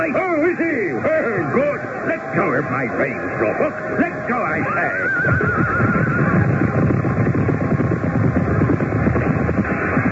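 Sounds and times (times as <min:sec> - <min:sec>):
speech: 0:00.0 - 0:01.2, 0:02.6 - 0:06.0
loud dense crowd commotion: 0:00.0 - 0:10.0
horse whinnying as its rider is thrown: 0:04.6 - 0:06.7
clatter: 0:06.8 - 0:10.0.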